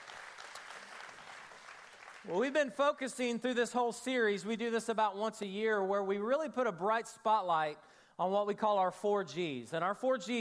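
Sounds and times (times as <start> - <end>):
crowd applauding: 0.0 - 2.6
speech: 2.2 - 10.4.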